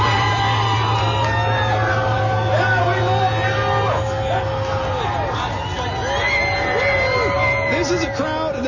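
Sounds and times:
large crowd of supporters cheering and screaming outside a hospital: 0:00.0 - 0:08.6
low rumbling hum: 0:00.0 - 0:08.6.

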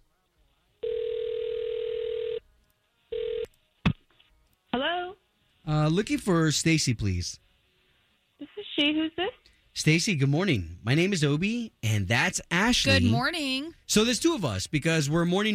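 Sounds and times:
telephone ringing tone as the call connects: 0:00.8 - 0:02.4, 0:03.1 - 0:03.5
speech: 0:05.7 - 0:07.4, 0:08.8 - 0:15.5.

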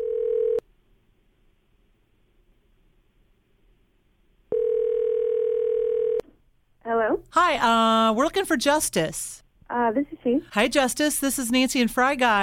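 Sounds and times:
telephone ringback tone on an outgoing call: 0:00.0 - 0:00.6, 0:04.5 - 0:06.2
speech: 0:07.3 - 0:12.4.

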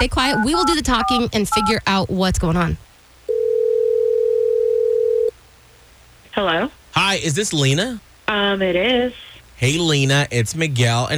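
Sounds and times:
speech: 0:00.0 - 0:02.9, 0:06.4 - 0:11.1
telephone dial tone while placing a call: 0:03.3 - 0:05.3.

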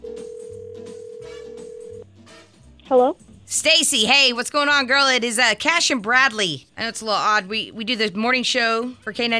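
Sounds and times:
steady telephone ringback tone while placing a phone call: 0:00.0 - 0:02.0
speech: 0:02.9 - 0:09.3.

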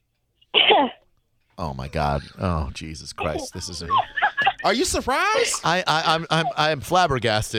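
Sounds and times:
person coughing: 0:00.6 - 0:01.0
speech: 0:00.8 - 0:01.0, 0:01.6 - 0:07.5
laughter: 0:03.3 - 0:07.2.

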